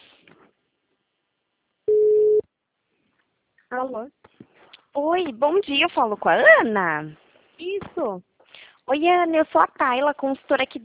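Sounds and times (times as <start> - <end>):
telephone line tone while a call waits to ring: 1.9 - 2.4
speech: 3.7 - 8.3, 8.9 - 10.8.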